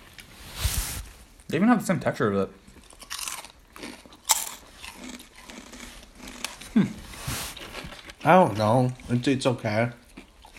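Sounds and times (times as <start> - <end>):
speech: 1.5 - 2.7, 8.2 - 10.0
Doritos 3D Crunch Spicy Ranch corn chips being bitten and chewed: 2.6 - 10.5.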